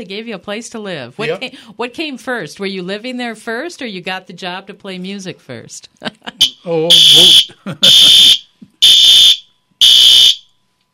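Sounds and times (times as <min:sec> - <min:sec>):
speech: 0:00.0 - 0:08.4
fire alarm sounding high-pitched electronic beeps during a test: 0:06.4 - 0:10.5.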